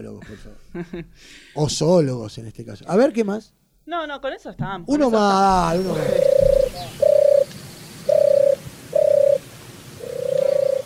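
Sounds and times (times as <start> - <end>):
speech: 0.0 - 7.0
faint hiss: 0.0 - 10.8
pigeon cooing: 5.5 - 9.4, 10.0 - 10.8.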